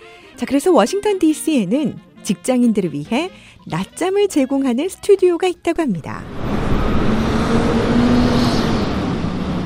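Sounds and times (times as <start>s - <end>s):
speech: 0.4s - 6.4s
busy road traffic outside a building in Washington, DC: 6.2s - 9.6s.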